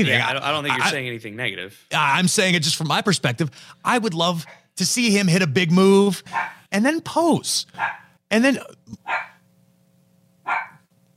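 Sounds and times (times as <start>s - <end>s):
speech: 0.0s - 9.3s
steady low hum: 0.0s - 11.1s
dog barking: 6.3s - 6.6s, 7.8s - 8.1s, 9.0s - 9.4s, 10.5s - 10.9s.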